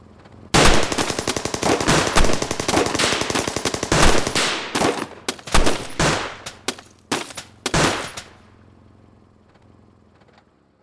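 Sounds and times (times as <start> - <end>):
gunfire from officers shooting at a Ford car: 0.6 - 8.4.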